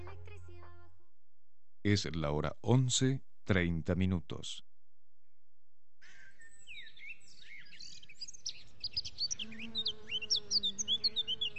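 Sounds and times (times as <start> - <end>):
speech: 1.8 - 4.7
birds chirping: 6.0 - 11.5
bees buzzing: 8.5 - 11.5.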